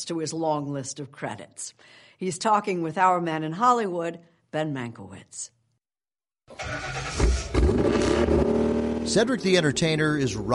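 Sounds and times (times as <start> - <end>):
speech: 0.0 - 5.6, 6.5 - 8.4, 9.1 - 10.5
car engine starting and rumbling with a deep roar: 6.5 - 10.5.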